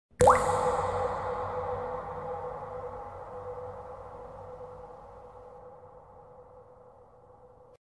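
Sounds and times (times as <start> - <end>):
tear drop with echo: 0.2 - 7.0.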